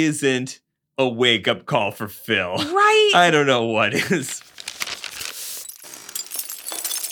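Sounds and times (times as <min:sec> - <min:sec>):
speech: 0:00.0 - 0:04.5
scattered glass shards and debris tinkling: 0:05.1 - 0:07.1
glass window shattering as a person crashes through it: 0:05.5 - 0:07.1.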